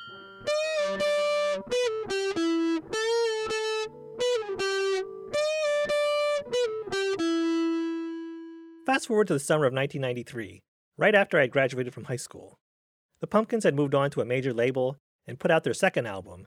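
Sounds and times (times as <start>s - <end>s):
two thick fuzzy distorted electric guitars playing a melodic riff: 0.0s - 8.4s
speech: 9.0s - 12.6s, 13.2s - 16.4s.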